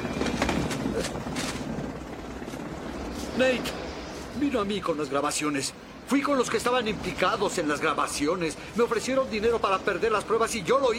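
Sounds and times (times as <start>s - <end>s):
helicopter rotor thumping: 0.0s - 4.5s
helicopter engine roar: 0.0s - 10.9s
speech: 3.4s - 3.8s, 4.4s - 10.9s.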